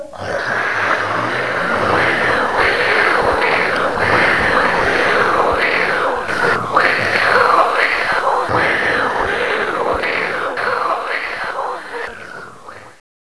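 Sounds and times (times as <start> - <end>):
dragon hissing: 0.0 - 13.0
laughter: 0.2 - 13.0.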